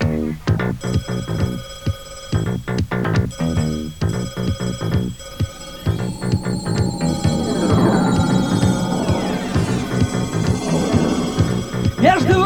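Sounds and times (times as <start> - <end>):
long-distance telephone bell ringing at a call office: 0.8 - 2.7, 3.4 - 12.4
layered music: 5.5 - 12.4.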